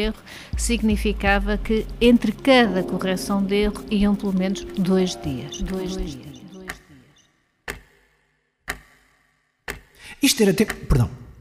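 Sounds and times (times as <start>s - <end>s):
speech: 0.0s - 6.3s, 10.2s - 11.2s
clock ticking: 0.0s - 8.1s, 8.7s - 9.0s, 9.6s - 11.3s.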